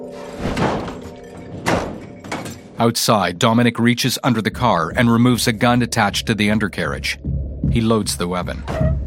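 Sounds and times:
door slammed shut by a woman: 0:00.4 - 0:02.7
speech: 0:02.8 - 0:08.9.

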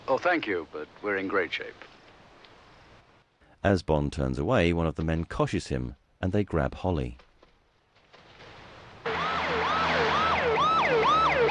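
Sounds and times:
speech: 0:00.1 - 0:01.9, 0:03.6 - 0:07.2
ambulance siren of a speeding ambulance: 0:09.1 - 0:11.4.

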